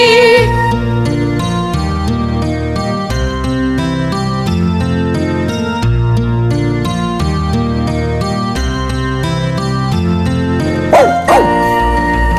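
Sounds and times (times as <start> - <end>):
bouncy music track: 0.0 - 12.3
dog barking sound effects yapping and whimpering: 10.9 - 11.8
high yelping glide: 10.9 - 11.8.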